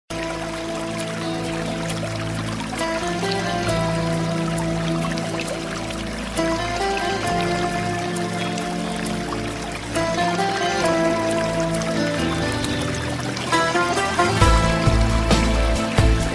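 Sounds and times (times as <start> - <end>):
nature sounds: 0.1 - 16.3
water: 0.1 - 16.3.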